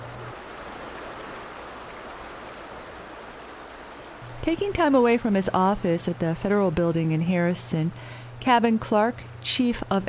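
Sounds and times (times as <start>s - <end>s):
river surging through canyon after rains: 0.0s - 5.5s
speech: 4.4s - 10.0s.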